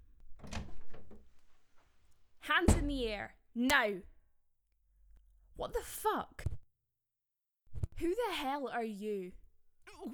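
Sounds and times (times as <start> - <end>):
door being opened: 0.0 - 2.0, 2.6 - 3.1
speech: 2.5 - 4.1, 5.6 - 6.5, 8.0 - 10.1
door knocking as it settles: 2.7 - 3.1.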